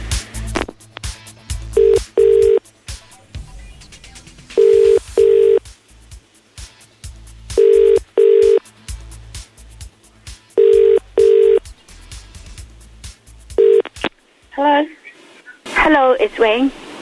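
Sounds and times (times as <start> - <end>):
faint noise: 0.0 - 16.9
telephone ringback tone: 1.8 - 2.6, 4.6 - 5.6, 7.6 - 8.6, 10.6 - 11.6, 13.6 - 13.8
speech: 16.2 - 16.8.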